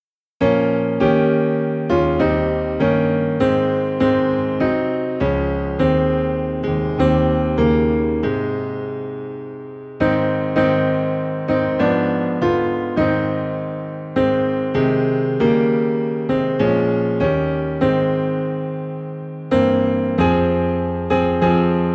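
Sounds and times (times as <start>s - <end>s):
low piano hymn in A flat: 0.0s - 21.9s.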